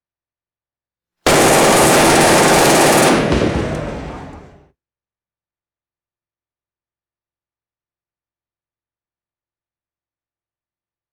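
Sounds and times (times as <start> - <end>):
assault rifle firing rapid bursts: 1.3 - 4.6.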